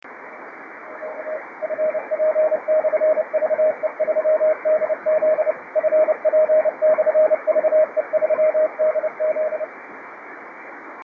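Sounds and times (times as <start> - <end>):
50.104 MHz CW on ham radio: 0.9 - 9.7.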